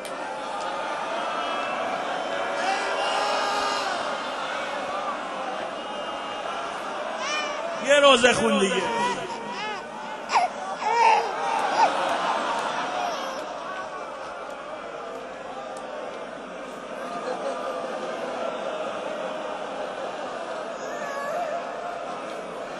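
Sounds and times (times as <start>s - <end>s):
crowd noise: 0.0s - 22.7s
laughter: 7.0s - 15.8s, 16.6s - 22.7s
baby crying in wailing bursts: 7.2s - 7.8s, 8.4s - 11.9s, 13.0s - 13.4s, 20.8s - 21.6s
indistinct voices: 7.8s - 11.3s
speech: 7.9s - 9.2s.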